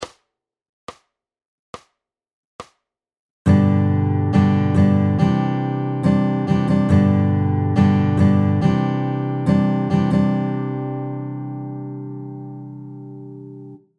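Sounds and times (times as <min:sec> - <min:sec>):
guitar strumming ballad patterns with flicks: 0:03.5 - 0:13.8.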